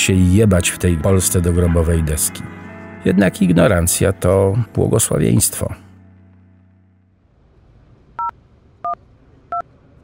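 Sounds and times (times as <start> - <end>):
speech: 0.0 - 5.9
phone keypad tone beeps as a phone number is dialed: 8.2 - 9.6.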